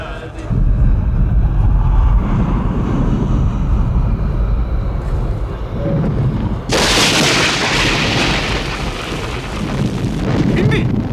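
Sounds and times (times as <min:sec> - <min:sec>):
roaring crackling storm noise: 0:00.4 - 0:11.1
deep rolling thunder: 0:00.5 - 0:11.1
lightning crack: 0:06.7 - 0:11.1.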